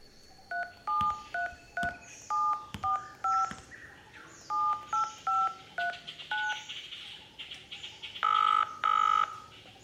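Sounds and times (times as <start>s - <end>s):
cell phone keypad dialing beeps: 0.5s - 3.5s, 4.5s - 6.6s, 8.2s - 9.4s.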